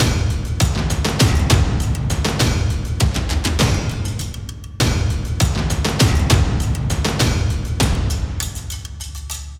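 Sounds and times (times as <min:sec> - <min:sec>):
cinematic loop of drum kit rhythms: 0:00.0 - 0:09.5.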